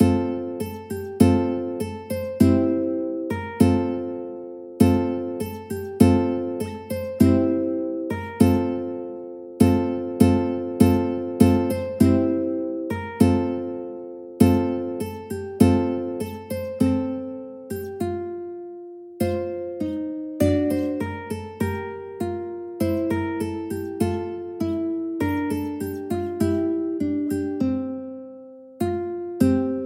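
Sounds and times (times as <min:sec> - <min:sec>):
ukulele: 0:00.0 - 0:29.8.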